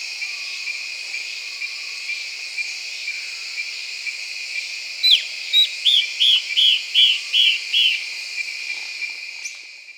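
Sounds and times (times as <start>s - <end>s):
yellow-browed antbird song of whistled notes: 5.1s - 8.1s.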